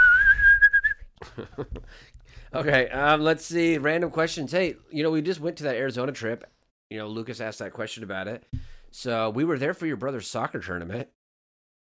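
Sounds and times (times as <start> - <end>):
person whistling a steady note: 0.0 - 1.1
speech: 1.2 - 11.2.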